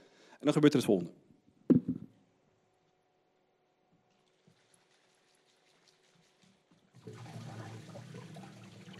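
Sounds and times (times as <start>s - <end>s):
speech: 0.4s - 1.2s
soft knock: 1.7s - 2.1s.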